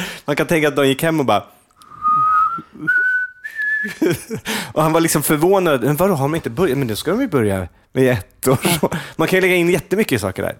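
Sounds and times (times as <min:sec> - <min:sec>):
speech: 0:00.3 - 0:01.6, 0:02.6 - 0:03.0, 0:03.8 - 0:10.5
person whistling clear sustained notes: 0:01.8 - 0:04.1.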